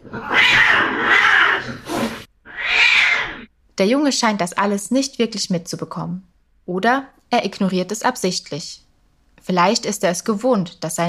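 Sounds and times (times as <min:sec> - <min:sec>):
agitated cat hissing and yowling: 0:00.0 - 0:03.5
speech: 0:03.8 - 0:08.8, 0:09.4 - 0:11.0.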